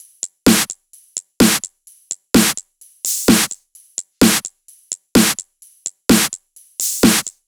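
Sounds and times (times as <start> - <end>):
big beat drum kit: 0.0 - 3.6, 4.2 - 4.6, 5.2 - 5.5, 6.1 - 7.4.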